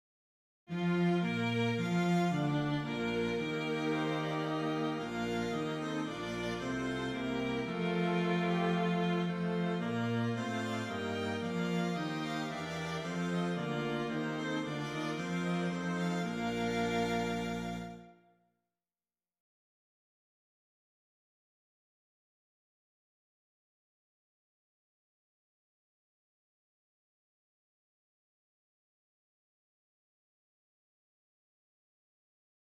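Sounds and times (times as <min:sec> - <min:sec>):
string instruments: 0:00.7 - 0:18.3.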